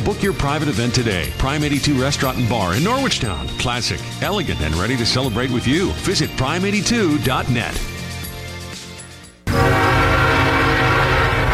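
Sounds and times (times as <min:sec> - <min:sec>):
speech: 0:00.0 - 0:07.9
train rumbling with rolling clatter of cars: 0:09.5 - 0:11.5.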